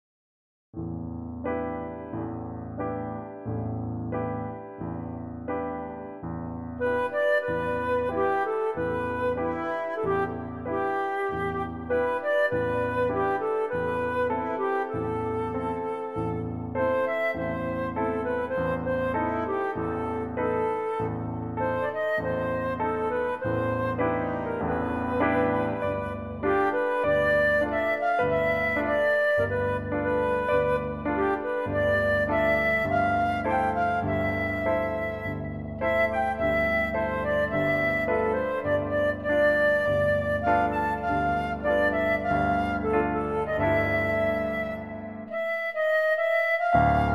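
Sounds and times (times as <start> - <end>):
piano: 0.8 - 47.1
flute: 6.8 - 47.1.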